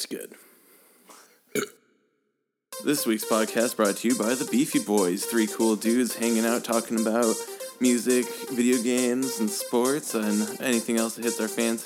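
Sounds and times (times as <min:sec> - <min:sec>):
person burping after drinking beer: 0:01.6 - 0:01.8
speech: 0:02.8 - 0:11.8.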